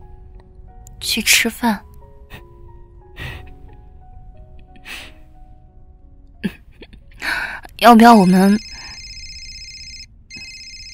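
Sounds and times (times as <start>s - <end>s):
speech: 1.0s - 1.9s, 7.8s - 8.7s
phone ringing: 8.1s - 10.9s.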